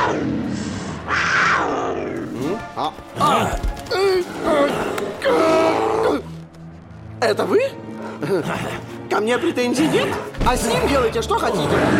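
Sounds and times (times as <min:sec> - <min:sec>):
bear roaring and growling in a fighting arena: 0:00.0 - 0:06.3, 0:09.8 - 0:11.9
speech: 0:00.1 - 0:00.4, 0:02.8 - 0:05.4, 0:07.2 - 0:11.9.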